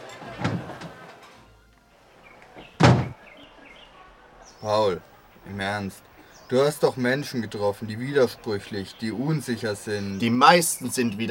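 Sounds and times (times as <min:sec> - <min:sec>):
door opening with a soft thud: 0:00.0 - 0:01.3, 0:02.5 - 0:03.2
quiet room noise: 0:00.0 - 0:09.0
door swinging shut with a heavy bang: 0:00.3 - 0:01.0, 0:02.6 - 0:03.2
speech: 0:04.6 - 0:11.2.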